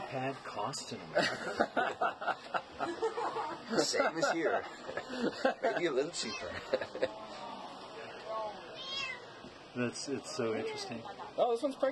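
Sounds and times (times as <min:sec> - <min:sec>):
faint noise: 0:00.0 - 0:11.9
speech: 0:00.1 - 0:07.5, 0:09.8 - 0:11.9
laughter: 0:01.1 - 0:07.6
cat meowing: 0:08.8 - 0:09.3.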